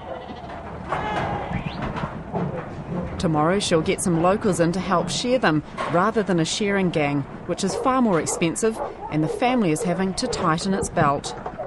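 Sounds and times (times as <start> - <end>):
black-faced sheep bleating while being dagged on a hill country farm: 0.0 - 1.7
steady rustle of farmyard noise on a hill country farm: 0.0 - 5.6, 6.9 - 11.6
speech: 3.2 - 11.4.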